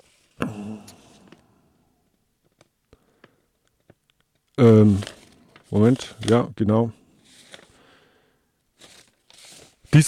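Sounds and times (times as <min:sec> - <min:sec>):
speech: 0:04.6 - 0:05.1, 0:05.7 - 0:07.0
paper rustling and crinkling: 0:04.6 - 0:06.5, 0:07.2 - 0:07.8, 0:08.7 - 0:10.0.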